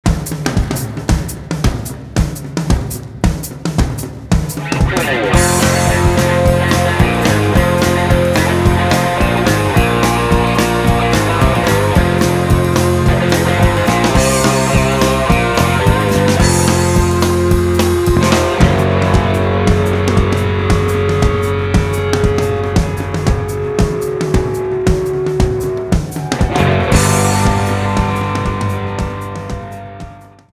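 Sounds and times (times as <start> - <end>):
drums: 0.0 - 30.5.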